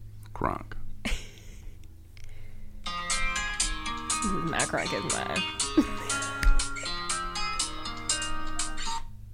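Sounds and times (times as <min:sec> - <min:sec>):
speech: 0:00.4 - 0:00.8, 0:04.2 - 0:06.0
phone ringtone playing an electronic melody: 0:02.9 - 0:09.0.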